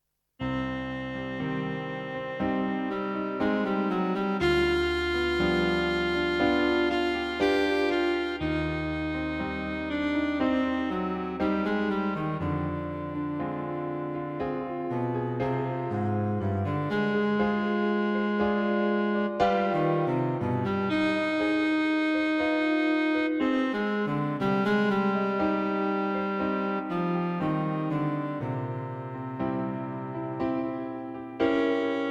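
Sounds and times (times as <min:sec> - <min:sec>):
cello in a slow sonata movement: 0:00.4 - 0:32.0
piano accompanying a cello sonata: 0:00.4 - 0:32.0.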